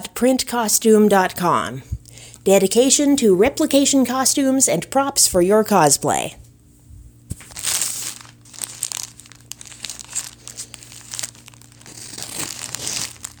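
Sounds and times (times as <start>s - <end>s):
steady hum: 0.0s - 13.3s
speech: 0.2s - 6.4s
plastic packaging crinkling: 7.3s - 13.3s
cutting through a packaging label: 11.8s - 13.2s.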